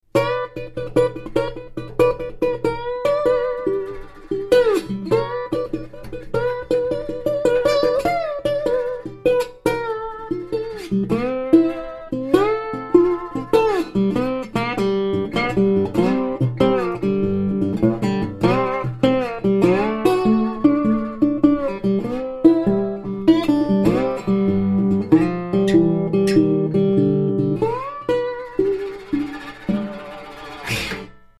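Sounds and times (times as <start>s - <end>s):
dobro: 0.1s - 31.3s.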